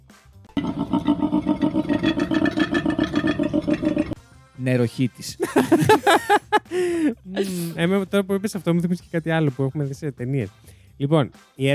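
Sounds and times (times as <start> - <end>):
male koala bellowing: 0.6 - 4.2
speech: 4.6 - 11.7
laughter: 5.4 - 7.8.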